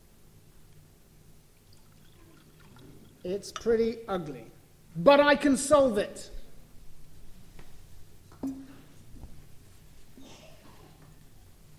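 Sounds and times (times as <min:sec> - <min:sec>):
water pouring from a jug: 0:01.6 - 0:03.7
speech: 0:03.2 - 0:06.4.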